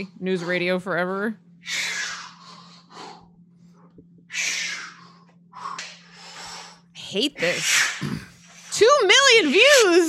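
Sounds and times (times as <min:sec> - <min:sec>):
speech: 0:00.0 - 0:01.8, 0:07.1 - 0:10.0
man breathing heavily in a warm-up video: 0:01.6 - 0:06.9.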